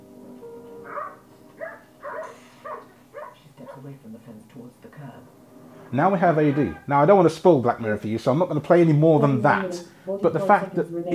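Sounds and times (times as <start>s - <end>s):
faint steady hum: 0.0s - 11.1s
dog barking: 0.9s - 4.0s, 6.4s - 6.9s
speech: 3.9s - 11.1s.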